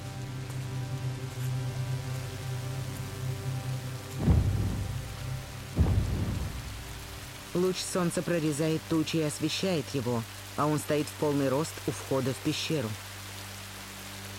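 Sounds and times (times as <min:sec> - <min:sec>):
steady rain in a storm at a cave entrance: 0:00.0 - 0:14.3
deep rolls of thunder: 0:04.1 - 0:07.6
speech: 0:07.6 - 0:13.1.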